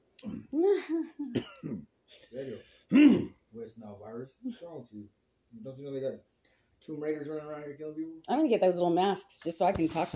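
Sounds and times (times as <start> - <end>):
speech: 0.2 - 10.1
person coughing: 0.3 - 1.8, 2.9 - 3.4
throat clearing: 1.3 - 1.9, 2.9 - 3.4.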